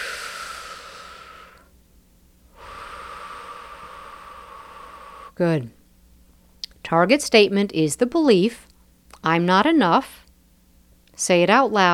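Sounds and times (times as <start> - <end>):
deep breath during a guided relaxation exercise: 0.0 - 1.7, 2.5 - 5.4
speech: 5.4 - 5.8, 6.9 - 10.2, 11.2 - 11.9.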